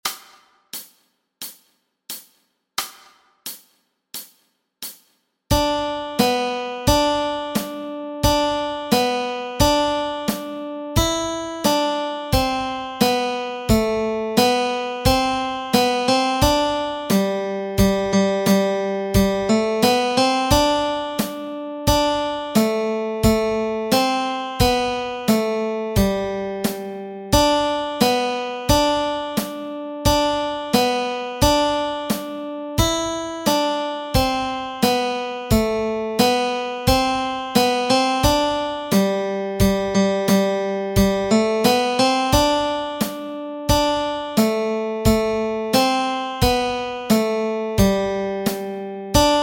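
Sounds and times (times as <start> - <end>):
nursery rhyme melody with chords: 5.5 - 49.4.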